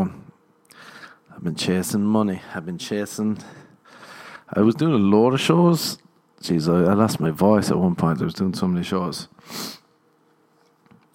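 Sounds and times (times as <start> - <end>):
speech: 1.4 - 3.6, 4.5 - 9.8
sharp nasal sniff: 9.4 - 9.9.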